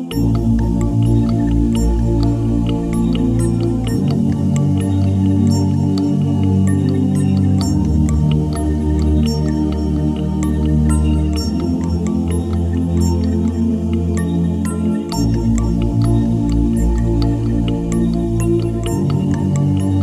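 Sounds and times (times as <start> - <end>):
African rhythm tuned to 432 Hz: 0.1 - 20.0.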